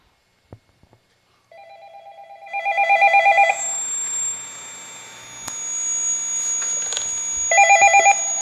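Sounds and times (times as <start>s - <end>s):
steady hum: 0.0s - 8.4s
rapid warbling electronic ring of a telephone with an incoming call: 1.6s - 8.4s.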